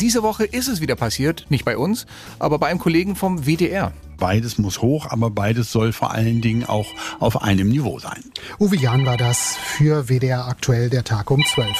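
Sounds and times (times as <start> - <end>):
speech: 0.0 - 11.7
retro monophonic mobile phone ringtone: 6.1 - 7.6, 8.6 - 10.1, 11.4 - 11.7.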